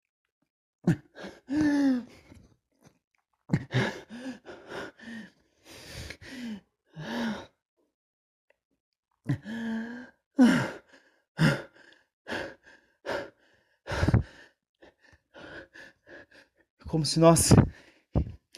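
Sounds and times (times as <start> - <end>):
person panting with quick gasping breaths: 0.9 - 2.4, 3.5 - 7.5, 9.3 - 16.6
speech: 17.0 - 17.6.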